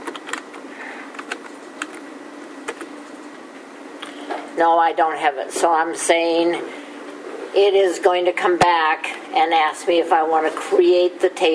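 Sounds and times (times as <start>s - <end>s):
typing on a computer keyboard: 0.0s - 0.5s
steady low hum: 0.0s - 11.5s
speech: 4.6s - 6.8s, 7.5s - 11.5s.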